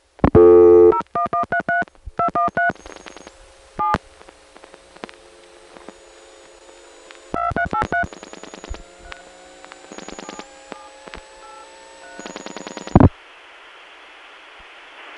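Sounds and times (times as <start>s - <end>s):
long phone line tone: 0.3s - 4.0s, 5.7s - 13.1s
touch-tone telephone dialing over a phone line: 0.4s - 4.0s, 5.9s - 8.8s, 9.9s - 13.1s
faint phone line hiss: 2.7s - 7.4s, 8.1s - 15.1s.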